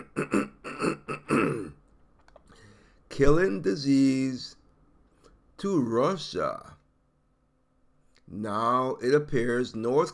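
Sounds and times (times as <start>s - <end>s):
person clearing throat in rough raspy bursts: 0.0s - 1.8s
speech: 3.2s - 4.6s, 5.6s - 6.8s, 8.3s - 10.1s.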